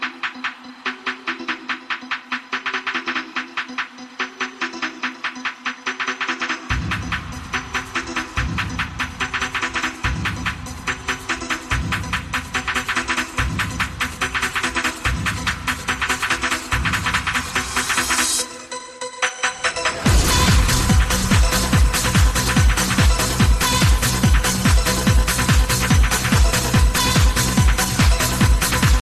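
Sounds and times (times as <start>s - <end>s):
trance disco iPhone SE ringtone: 0.0s - 29.0s.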